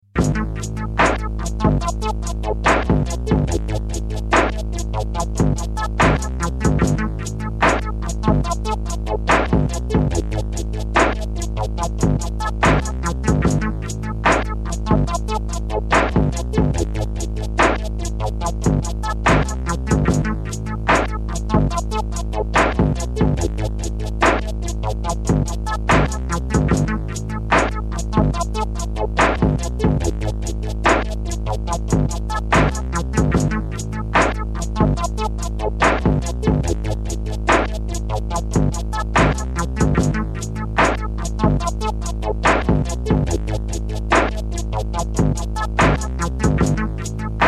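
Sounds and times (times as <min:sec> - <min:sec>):
beat sketch: 0:00.0 - 0:47.4.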